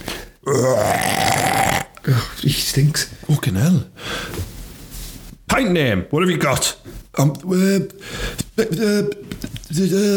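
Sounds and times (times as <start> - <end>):
speech: 0.5 - 1.0, 2.4 - 4.4, 5.6 - 10.1
baby boy burping while being burped by a woman: 0.5 - 2.0.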